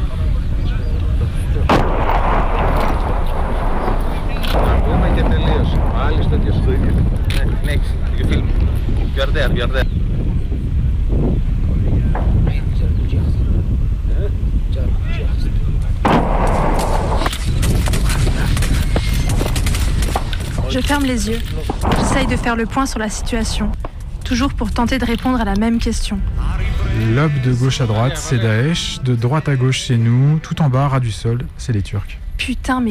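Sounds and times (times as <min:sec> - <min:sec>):
continuous rough wind-like roar: 0:00.0 - 0:30.4
artillery fire in combat: 0:01.6 - 0:09.3, 0:12.0 - 0:14.0, 0:16.0 - 0:25.1
gunshots with tracer rounds in combat: 0:01.7 - 0:08.0, 0:16.0 - 0:24.1
speech: 0:09.4 - 0:09.9, 0:21.0 - 0:26.4, 0:27.0 - 0:32.8.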